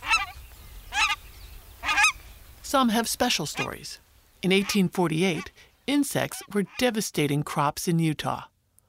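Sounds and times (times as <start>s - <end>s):
nene Hawaiian goose honking: 0.0s - 1.2s, 1.8s - 2.2s, 3.4s - 3.9s, 4.5s - 5.5s, 6.2s - 7.0s
speech: 2.7s - 8.5s.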